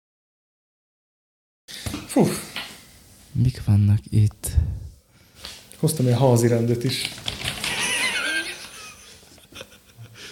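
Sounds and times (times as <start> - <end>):
speech: 2.1 - 2.6, 3.4 - 4.8, 5.8 - 7.3
long sheet of paper crackling as it is unrolled: 6.8 - 8.0
laughter: 7.6 - 10.2.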